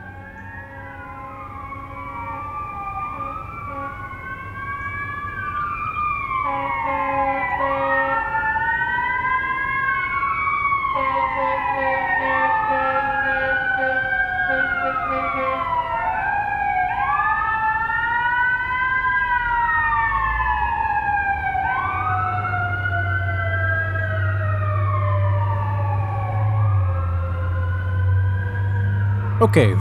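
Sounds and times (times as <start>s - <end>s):
fire truck siren wailing: 0.0s - 29.7s
deep fire truck engine rumble: 29.4s - 29.7s
speech: 29.4s - 29.7s.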